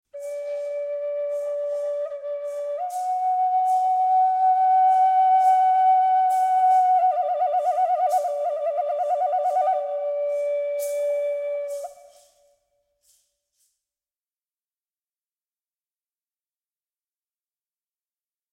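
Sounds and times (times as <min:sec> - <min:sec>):
flute phrase: 0:00.2 - 0:12.4.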